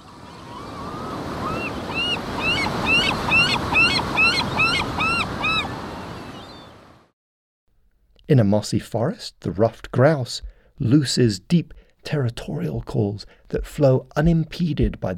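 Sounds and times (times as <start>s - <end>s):
rushing surf on ocean shore: 0.0s - 7.0s
gull crying: 0.5s - 5.7s
speech: 8.3s - 15.1s.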